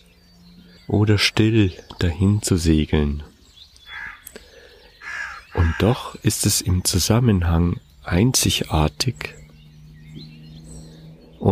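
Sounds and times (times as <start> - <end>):
speech: 0.9 - 3.3, 5.7 - 9.4
raven cawing outdoors: 3.8 - 6.2.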